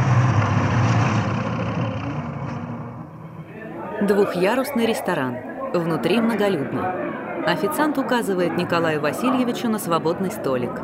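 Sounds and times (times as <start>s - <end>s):
car engine running as the car pulls away: 0.0s - 3.4s
speech: 4.0s - 10.8s.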